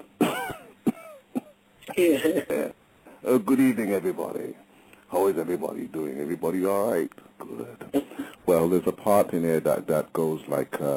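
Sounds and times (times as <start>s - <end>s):
elderly man of about 80 coughing: 0.2s - 2.7s, 7.9s - 8.4s
speech: 2.0s - 10.9s.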